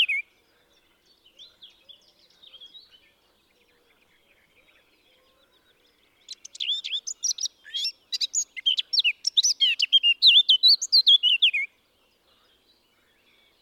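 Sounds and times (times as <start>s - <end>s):
Eurasian blackcap Sylvia atricapilla song: 0.0s - 13.6s.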